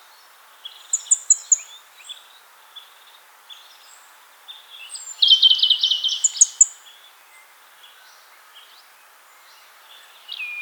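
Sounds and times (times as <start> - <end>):
European robin Erithacus rubecula singing: 0.6 - 7.0.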